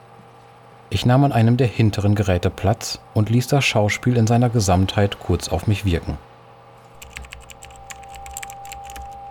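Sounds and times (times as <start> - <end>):
steady low electrical hum in a small room: 0.0 - 9.2
speech: 0.9 - 6.3
several computer keyboards typing: 6.9 - 9.2.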